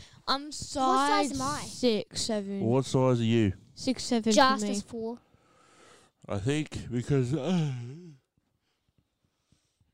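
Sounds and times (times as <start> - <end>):
faint noise: 0.0 - 9.9
speech: 0.3 - 5.2, 6.2 - 8.2
soft breathy sounds: 5.2 - 6.2, 7.5 - 9.9
voiced yawn: 7.4 - 8.2.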